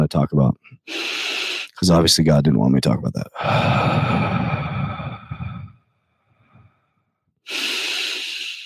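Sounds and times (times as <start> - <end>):
speech: 0.0 - 1.2, 1.8 - 4.6
deep breaths in a guided breathing exercise: 0.6 - 1.8, 3.3 - 8.6.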